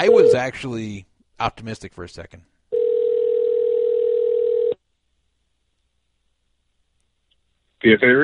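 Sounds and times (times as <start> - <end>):
speech: 0.0 - 2.5, 7.8 - 8.2
phone dial tone: 2.7 - 4.8.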